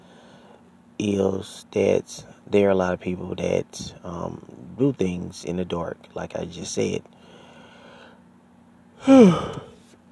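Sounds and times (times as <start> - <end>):
speech: 1.0 - 7.3, 9.0 - 9.7
person yawning: 9.0 - 9.8.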